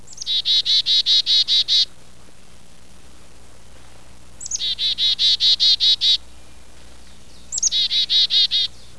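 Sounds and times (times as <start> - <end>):
chickadee calling: 0.0 - 1.9, 4.4 - 8.9.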